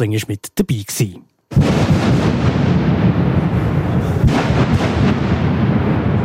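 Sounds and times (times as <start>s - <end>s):
speech: 0.0s - 2.2s
deep booming tunnel construction blast rumble: 1.5s - 6.2s.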